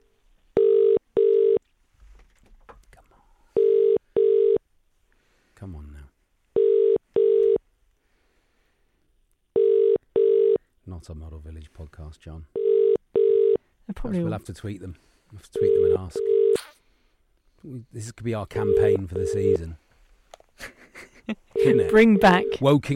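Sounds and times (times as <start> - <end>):
telephone ringing tone on a call: 0.6 - 1.6, 3.6 - 4.6, 6.6 - 7.6, 9.6 - 10.6, 12.6 - 13.6, 15.6 - 16.6, 18.6 - 19.6, 21.5 - 22.7
speech: 11.0 - 12.6, 13.9 - 16.4, 17.6 - 19.8, 21.3 - 22.9
laughter: 20.6 - 22.0.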